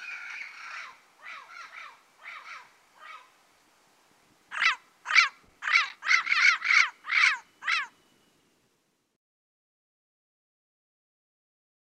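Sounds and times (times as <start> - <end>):
Turquoise-fronted amazon squawking in the Pantanal, Brazil: 0.0 - 3.3, 4.5 - 7.9.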